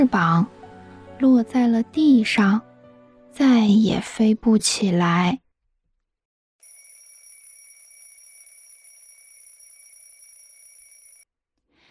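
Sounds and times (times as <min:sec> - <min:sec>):
speech: 0:00.0 - 0:00.6, 0:01.2 - 0:02.7, 0:03.4 - 0:05.4
alarm clock ringing with a shrill electronic buzz: 0:06.6 - 0:11.3.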